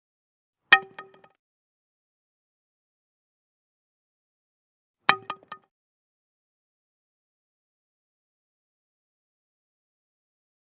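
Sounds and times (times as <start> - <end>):
wooden baseball bat dropping and bouncing: 5.1 - 5.6.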